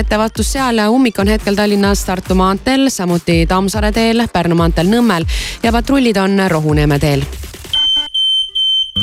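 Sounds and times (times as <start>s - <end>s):
speech: 0.0s - 7.5s
smoke alarm beeping: 7.7s - 9.0s.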